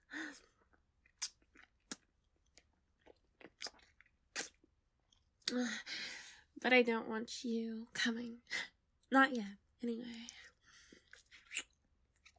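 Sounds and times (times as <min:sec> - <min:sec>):
wet kissing and sucking mouth sounds during oral sex: 0:03.6 - 0:04.6, 0:11.2 - 0:11.8
speech: 0:06.6 - 0:10.4.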